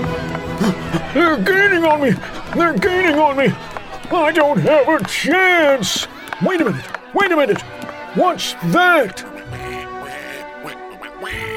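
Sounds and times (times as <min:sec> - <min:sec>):
speech: 0:00.0 - 0:09.6
laughter: 0:00.4 - 0:11.5
giant purple polka-dotted duck quacking: 0:09.2 - 0:11.5.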